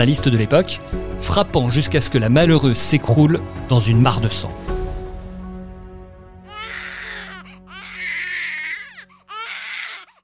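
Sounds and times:
speech: 0:00.0 - 0:04.7
baby crying in a cradle: 0:06.5 - 0:10.2.

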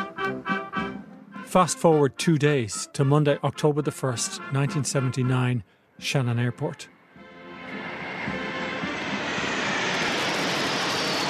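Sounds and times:
speech: 0:01.5 - 0:06.9
Irish Air Corps military aircraft flying past at Shannon Airport: 0:06.9 - 0:11.2.

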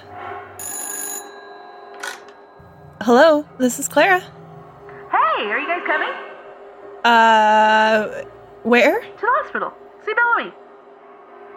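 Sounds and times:
telephone ringing with a bright tone: 0:00.6 - 0:03.1
speech: 0:03.0 - 0:04.4, 0:05.4 - 0:06.3, 0:07.0 - 0:10.6.

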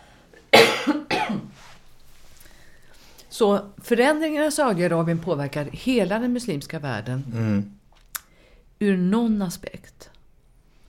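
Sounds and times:
forceful coughs with a breathy tail: 0:00.5 - 0:01.5
speech: 0:03.4 - 0:07.8, 0:08.8 - 0:10.1.

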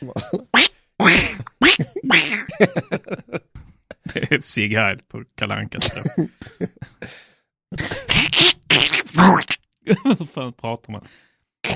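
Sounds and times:
voice imitating duck quacks: 0:00.5 - 0:02.5, 0:08.1 - 0:09.6
short faint vocal bursts: 0:00.6 - 0:02.5, 0:08.1 - 0:09.6
laughter: 0:01.1 - 0:04.4, 0:05.8 - 0:07.2, 0:09.9 - 0:10.4
speech: 0:02.6 - 0:02.9, 0:04.3 - 0:11.7.

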